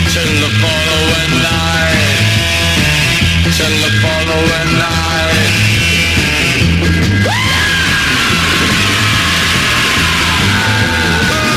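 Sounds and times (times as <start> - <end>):
loud dense horror rock music with pounding beat: 0.0 - 11.5
howling wail over the band: 7.2 - 11.5.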